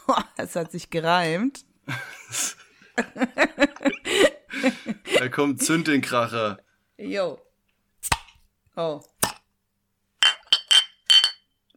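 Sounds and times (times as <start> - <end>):
speech: 0.1 - 8.2, 8.8 - 9.1
beer glasses clinking in a toast: 10.2 - 11.5.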